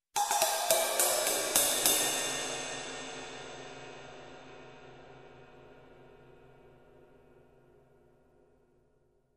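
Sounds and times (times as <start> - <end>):
various cymbal hits: 0.2 - 5.8.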